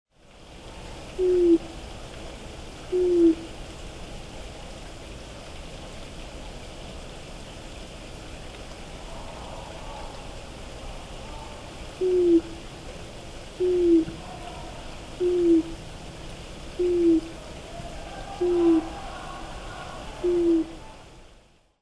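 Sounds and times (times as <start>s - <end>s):
Japanese Night Heron calling: 1.2s - 1.6s, 12.0s - 12.5s, 13.6s - 14.2s, 15.2s - 15.8s, 16.8s - 17.4s, 18.4s - 18.9s, 20.2s - 20.7s.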